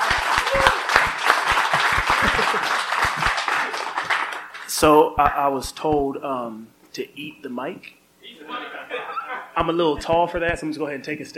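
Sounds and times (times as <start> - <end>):
crowd applauding: 0.0 - 4.7
laughter: 1.5 - 4.0, 8.4 - 9.6
speech: 4.8 - 11.3.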